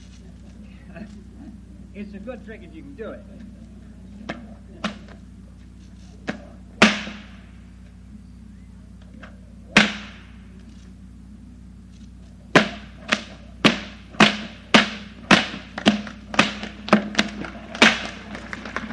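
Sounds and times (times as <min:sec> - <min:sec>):
speech: 0:01.0 - 0:01.3, 0:02.0 - 0:03.6
two whips cracked overhead at the same time as a trick: 0:12.6 - 0:18.8.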